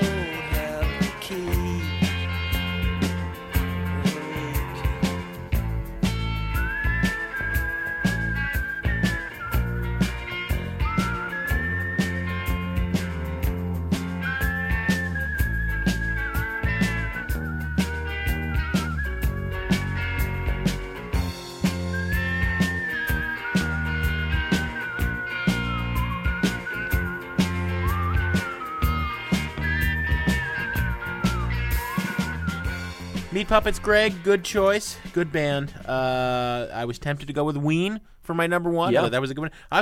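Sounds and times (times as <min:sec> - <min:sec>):
whistled melody over a rock band: 0:00.0 - 0:05.4, 0:06.0 - 0:33.4
full rock band with drums, bass and guitar: 0:00.0 - 0:35.8
speech: 0:33.4 - 0:39.8.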